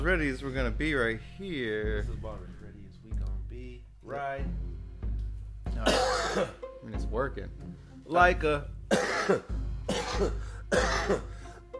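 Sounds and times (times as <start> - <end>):
speech: 0.0 - 2.8, 4.1 - 4.7, 5.8 - 11.3
smoker coughing after smoking weed: 5.8 - 6.6, 8.9 - 11.5.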